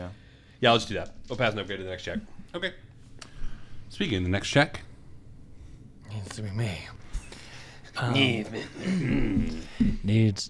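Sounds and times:
speech: 0.0 - 2.9, 3.9 - 4.9, 6.1 - 7.0, 8.0 - 10.4
throat clearing close to the microphone: 8.6 - 9.8.

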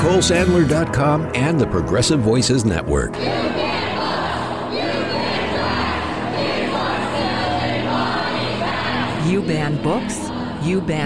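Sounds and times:
speech: 0.0 - 3.9, 9.3 - 11.0
large crowd of protesters chanting and shouting at the Tennessee state capitol: 3.2 - 11.0.

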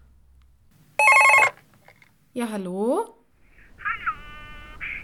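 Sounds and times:
telephone bell ringing in a podcast jingle: 1.0 - 1.6
speech: 2.4 - 3.2.

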